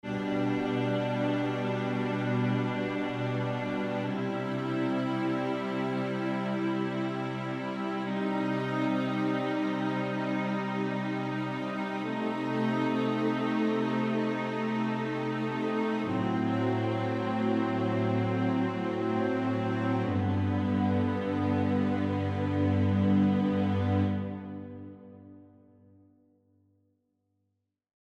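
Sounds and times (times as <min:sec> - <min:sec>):
major chords on a string instrument: 0:00.0 - 0:25.8.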